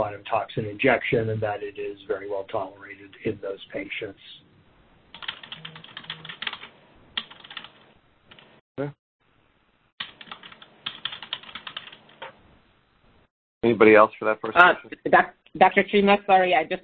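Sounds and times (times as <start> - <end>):
speech: 0.0 - 4.4, 8.8 - 9.0, 13.6 - 16.8
computer keyboard typing picked up through an online meeting call: 5.1 - 8.5, 10.0 - 12.3.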